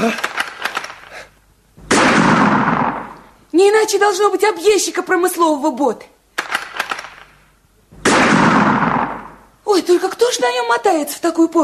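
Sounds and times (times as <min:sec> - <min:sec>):
gunshots: 0:01.8 - 0:03.2, 0:06.4 - 0:07.4, 0:08.0 - 0:09.5
speech: 0:03.6 - 0:06.2, 0:09.9 - 0:11.6.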